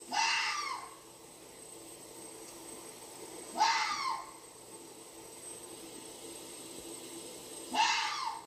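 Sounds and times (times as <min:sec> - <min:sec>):
fox cry: 0:00.1 - 0:01.0, 0:03.5 - 0:04.4, 0:07.7 - 0:08.4.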